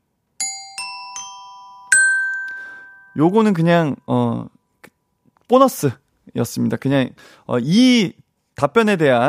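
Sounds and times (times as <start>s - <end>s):
four-note chime jingle: 0.4s - 3.9s
speech: 3.2s - 4.6s, 5.5s - 9.2s.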